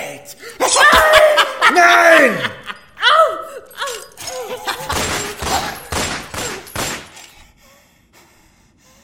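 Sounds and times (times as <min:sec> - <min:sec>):
laughter: 0:00.5 - 0:06.7
gunshots in a standoff with a knife: 0:04.9 - 0:07.3.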